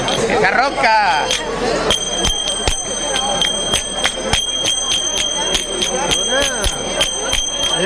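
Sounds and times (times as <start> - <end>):
speech: 0.4 - 2.0
small cymbals struck: 1.2 - 7.8.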